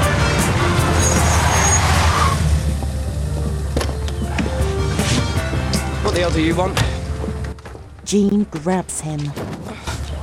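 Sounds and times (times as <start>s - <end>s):
car engine rumbling while driven on the road: 0.0s - 8.0s
speech: 6.2s - 6.9s, 8.1s - 9.5s.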